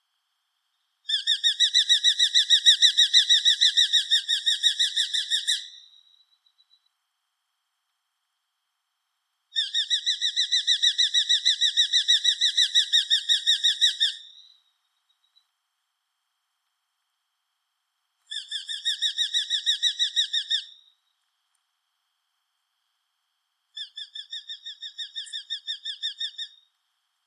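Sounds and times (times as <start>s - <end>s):
caure bird singing: 1.1s - 6.9s, 9.6s - 15.5s, 18.3s - 21.0s, 23.8s - 26.7s.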